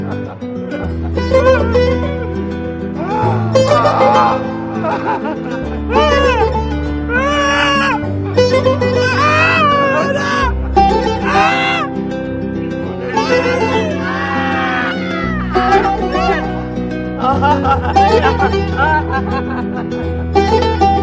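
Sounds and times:
laughter: 0.0s - 20.8s
sustained music: 0.0s - 21.0s
woman crying loudly with wavering wails: 1.1s - 2.4s, 3.0s - 8.0s, 8.9s - 11.9s, 12.8s - 16.6s, 17.2s - 19.6s.

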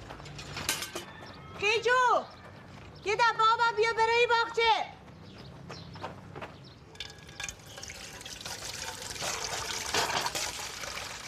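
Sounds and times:
speech: 1.6s - 2.4s, 3.0s - 4.9s
muddy water pouring and trickling: 7.0s - 11.2s.

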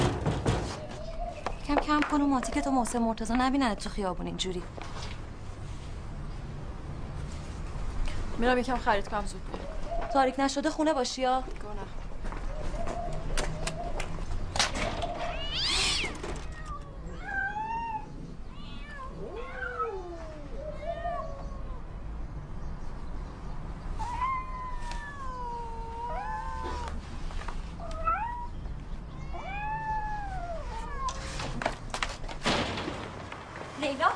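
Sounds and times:
faint noise: 0.0s - 34.1s
speech: 1.7s - 5.1s, 8.4s - 12.0s
injured cats with broken legs meowing in a room: 15.0s - 22.0s, 23.9s - 27.1s, 27.8s - 31.5s.

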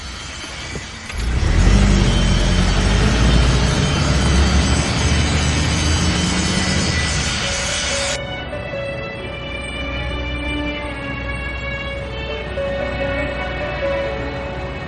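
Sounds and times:
broadband tire noise: 0.0s - 8.2s
road rumble: 0.5s - 14.8s
car engine hum: 1.1s - 8.2s.

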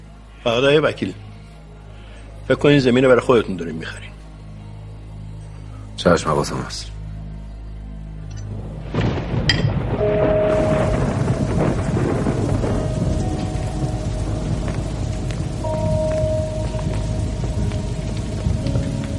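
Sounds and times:
speech: 0.4s - 1.3s, 2.5s - 4.2s, 6.0s - 6.9s
heavy rain: 8.5s - 19.1s.

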